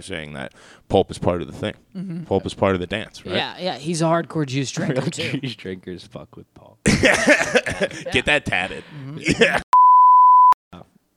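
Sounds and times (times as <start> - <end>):
speech: 0.0 - 9.6
laughter: 6.9 - 9.7
loud steady single-pitch censor bleep: 9.8 - 10.6.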